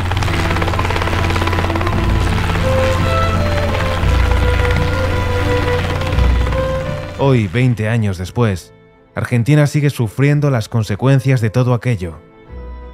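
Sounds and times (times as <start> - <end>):
helicopter rotor thumping in a rapid steady chop: 0.0 - 8.0
speech: 7.2 - 12.3.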